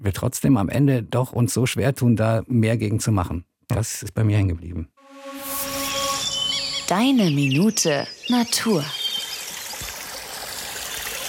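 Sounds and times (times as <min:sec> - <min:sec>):
speech: 0:00.0 - 0:04.9, 0:06.9 - 0:09.0
babbling forest brook: 0:07.3 - 0:11.2.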